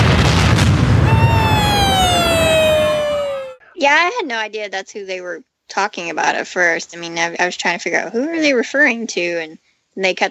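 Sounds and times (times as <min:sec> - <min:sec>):
fireworks exploding: 0:00.0 - 0:03.6
high whistling tone gliding downward: 0:01.0 - 0:03.6
speech: 0:03.9 - 0:10.2.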